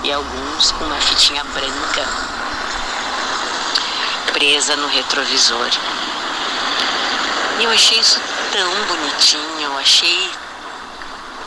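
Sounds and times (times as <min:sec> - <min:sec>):
city bus passing by: 0:00.0 - 0:11.4
speech: 0:00.1 - 0:02.6, 0:04.4 - 0:06.1, 0:07.6 - 0:10.4.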